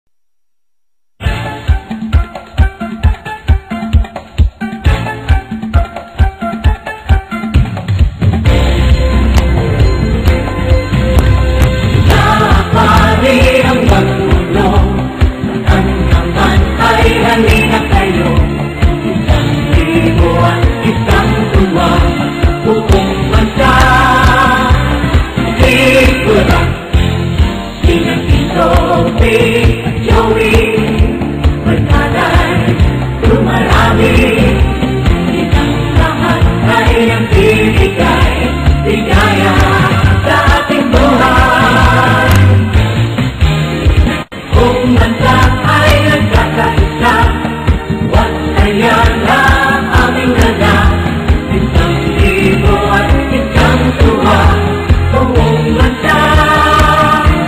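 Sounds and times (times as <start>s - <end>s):
theme song: 1.2s - 57.4s.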